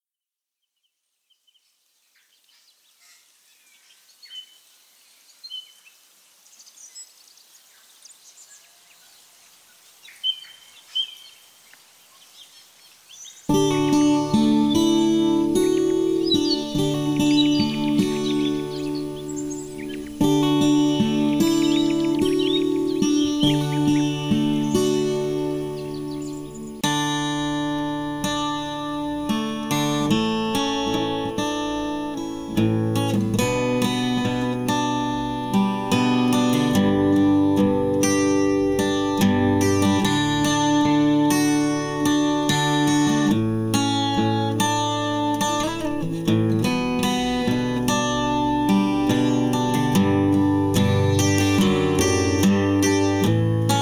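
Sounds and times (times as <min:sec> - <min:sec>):
ambient guitar melody: 0:13.5 - 0:53.8.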